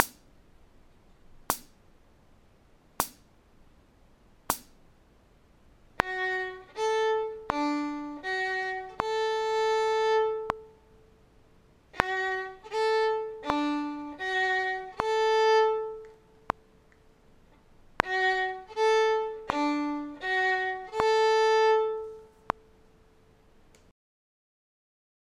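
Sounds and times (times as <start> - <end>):
fiddle arpeggio in D: 6.0 - 10.8, 12.0 - 16.3, 18.0 - 22.6.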